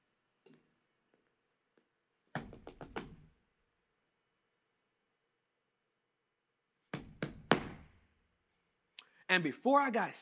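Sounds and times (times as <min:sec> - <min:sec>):
firm sharp knocks on a door: 0:02.4 - 0:03.2, 0:06.9 - 0:07.9
speech: 0:09.3 - 0:10.2.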